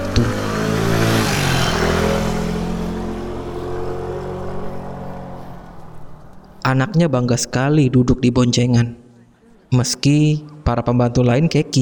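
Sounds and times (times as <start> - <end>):
motorcycle engine revving and idling: 0.0 - 6.8
speech: 6.7 - 9.0, 9.7 - 11.7.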